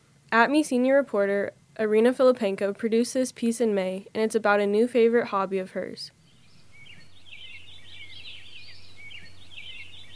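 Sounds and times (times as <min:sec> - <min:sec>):
low steady hum: 0:00.0 - 0:10.1
speech: 0:00.3 - 0:06.2
bird giving shrill whistle-like calls: 0:06.3 - 0:10.1.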